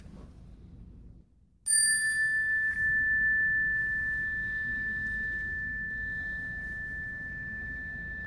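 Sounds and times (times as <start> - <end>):
meditation bell struck and ringing: 1.7 - 8.2.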